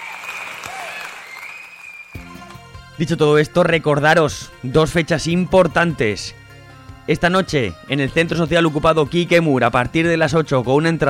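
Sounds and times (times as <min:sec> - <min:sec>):
crowd applause: 0:00.0 - 0:02.2
speech: 0:03.0 - 0:06.4, 0:07.1 - 0:11.0.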